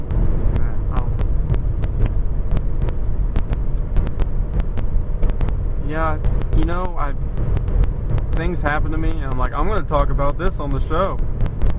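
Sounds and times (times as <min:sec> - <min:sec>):
sharp clicks: 0:00.0 - 0:05.6, 0:06.2 - 0:11.7
cars passing by: 0:00.0 - 0:11.7
road traffic rumble outdoors: 0:00.0 - 0:11.7
wind buffeting: 0:00.0 - 0:11.7
speech: 0:06.0 - 0:07.8, 0:08.4 - 0:11.3.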